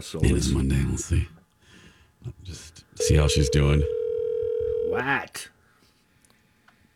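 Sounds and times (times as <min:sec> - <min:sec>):
speech: 0:00.0 - 0:01.4, 0:02.2 - 0:04.0, 0:04.9 - 0:05.6
ringback tone of an outgoing telephone call: 0:03.0 - 0:05.0.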